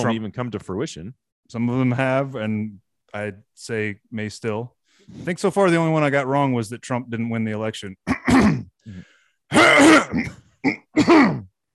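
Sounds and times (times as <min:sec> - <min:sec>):
speech: 0:00.0 - 0:11.5
person clearing throat: 0:08.0 - 0:11.6.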